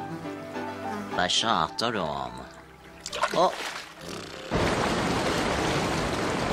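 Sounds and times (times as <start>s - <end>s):
speech: 1.2s - 2.5s, 3.3s - 4.3s
rushing water of a large waterfall: 4.0s - 6.5s.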